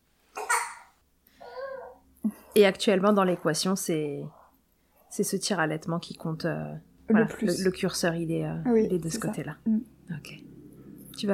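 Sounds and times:
baby babbling: 1.4 - 2.0
speech: 2.2 - 4.4, 5.1 - 10.5, 11.2 - 11.3.

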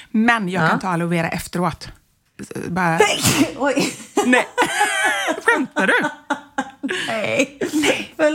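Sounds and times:
speech: 0.1 - 8.3
person sneezing: 3.0 - 3.6
laughter: 3.8 - 8.1.

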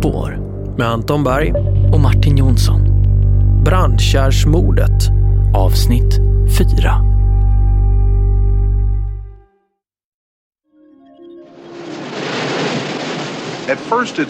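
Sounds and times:
low sustained musical drone: 0.0 - 9.4
speech: 0.8 - 2.9, 3.6 - 7.1, 13.7 - 14.2
waves washing against a beach: 11.7 - 14.2.

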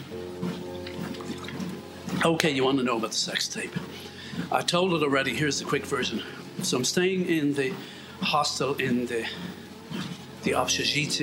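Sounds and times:
steady low hum: 0.0 - 11.2
person drinking water while walking: 0.1 - 2.2, 3.8 - 4.5, 9.3 - 10.3
speech: 2.2 - 9.6, 10.4 - 11.2.

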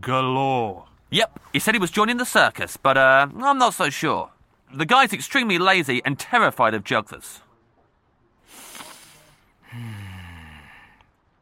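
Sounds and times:
speech: 0.0 - 7.4, 9.7 - 10.0
breathy sniff: 8.5 - 11.0
snorting inhale with a rough nasal honk: 8.5 - 11.0.

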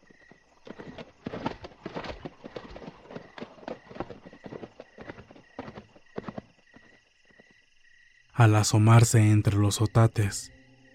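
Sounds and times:
horse hooves clip-clopping: 0.0 - 7.6
speech: 8.4 - 10.6.

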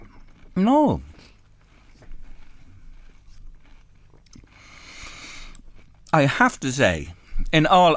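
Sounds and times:
steady low hum: 0.0 - 7.9
person biting and chewing a crisp biscuit: 0.2 - 6.1
speech: 0.6 - 1.3, 6.1 - 7.9.

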